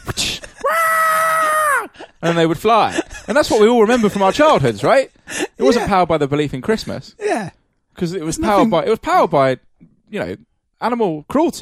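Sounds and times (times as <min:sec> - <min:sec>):
person imitating a reindeer screaming: 0:00.6 - 0:01.9
speech: 0:02.2 - 0:11.6.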